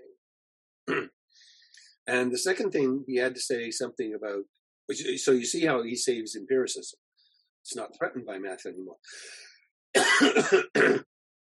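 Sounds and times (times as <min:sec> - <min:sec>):
man clearing throat: 0:00.9 - 0:01.1, 0:10.0 - 0:11.1
speech: 0:02.1 - 0:07.0, 0:07.6 - 0:11.1
man coughing: 0:10.0 - 0:11.1.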